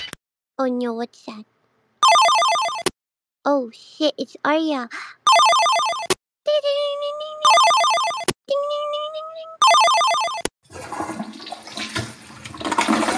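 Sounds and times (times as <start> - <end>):
speech: 0.6 - 1.6, 3.5 - 5.7, 6.5 - 7.4
loud repeating electronic ringtone pattern: 2.0 - 2.8, 5.3 - 6.1, 7.4 - 8.3, 9.6 - 10.5
rushing toilet flush with swirling water: 10.7 - 13.1.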